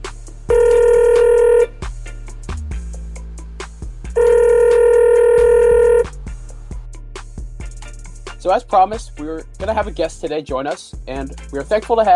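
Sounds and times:
phone ringback tones as a call is dialed: 0.5s - 1.8s, 4.2s - 6.1s
speech: 8.5s - 12.1s.

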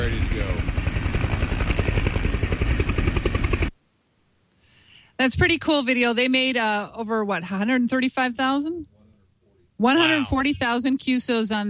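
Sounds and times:
helicopter rotor blades thumping: 0.0s - 3.7s
speech: 5.2s - 8.9s, 9.8s - 11.6s.

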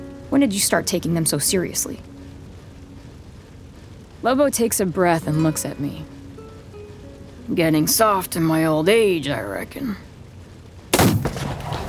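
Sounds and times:
speech: 0.3s - 2.2s, 4.2s - 6.2s, 7.5s - 10.1s
single loud gunshot with rumbling echo: 11.0s - 11.8s.

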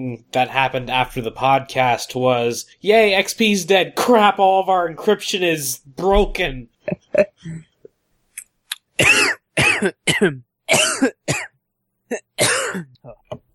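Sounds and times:
speech: 0.0s - 7.7s, 9.0s - 11.5s
person coughing after drinking water the wrong way: 9.0s - 11.5s, 12.1s - 13.3s.

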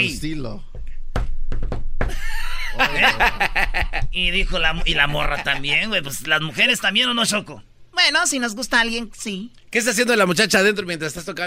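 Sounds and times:
speech: 0.0s - 0.8s, 2.8s - 11.4s
rhythmic special knock on a hard surface: 0.7s - 2.2s
people laughing: 2.1s - 6.1s.

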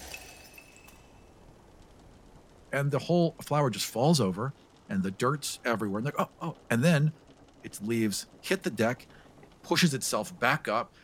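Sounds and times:
pot clinking, cracking and shattering: 0.0s - 1.3s
speech: 2.7s - 11.0s.

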